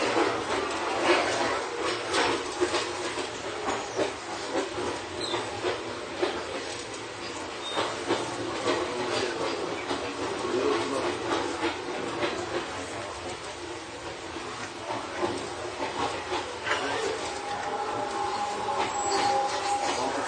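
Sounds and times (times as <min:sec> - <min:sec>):
rail-joint clatter and rattles: 0:00.0 - 0:20.2
steel-bodied commuter train rumbling on the move: 0:00.0 - 0:20.2
thin whine: 0:16.7 - 0:20.2.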